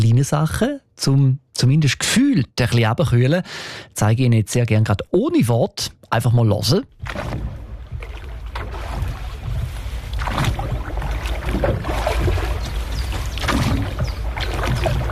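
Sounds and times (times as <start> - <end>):
speech: 0.2 - 7.6
rowboat oar strokes splashing on a lake: 6.9 - 15.0
soft wind-like rumble: 6.9 - 15.0
continuous wash of lake water: 7.0 - 15.0.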